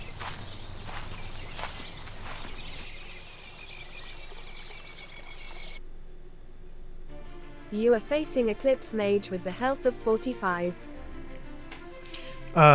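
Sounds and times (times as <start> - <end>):
soft footsteps walking forward in a video game: 0.0 - 5.7
speech: 7.7 - 10.9, 12.6 - 12.7.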